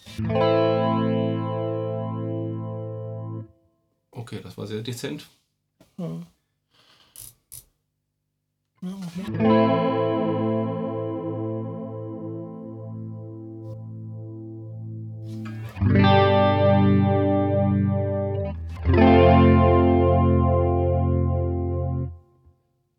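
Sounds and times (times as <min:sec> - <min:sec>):
electric guitar chords through a vibrato pedal: 0:00.1 - 0:03.5, 0:09.2 - 0:22.2
speech: 0:00.2 - 0:00.6, 0:04.3 - 0:05.4, 0:06.0 - 0:06.4, 0:08.8 - 0:09.8.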